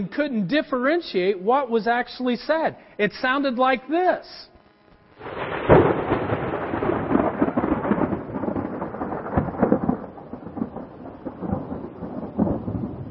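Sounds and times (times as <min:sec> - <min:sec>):
speech: 0:00.0 - 0:04.5
thunder rumbling: 0:05.2 - 0:13.1.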